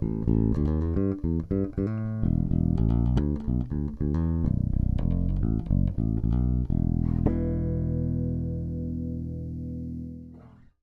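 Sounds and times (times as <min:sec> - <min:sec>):
Lollar Thunderbird active bridge pickup bass guitar: 0:00.0 - 0:10.8.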